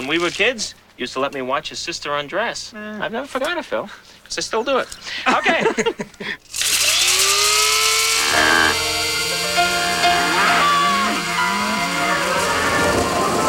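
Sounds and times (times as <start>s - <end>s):
speech: 0.0s - 6.8s
laughter: 5.1s - 6.4s
battery-powered coffee grinder grinding beans: 6.5s - 13.4s.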